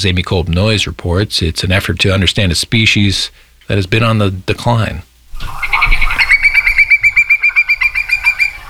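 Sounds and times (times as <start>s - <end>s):
speech: 0.0s - 5.7s
Hudsonian whimbrel calling rapid rippling series of whistled notes: 5.4s - 8.6s.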